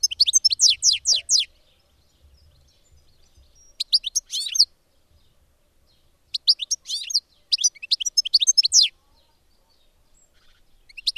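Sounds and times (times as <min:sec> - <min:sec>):
European goldfinch singing twittering phrases: 0:00.0 - 0:11.1.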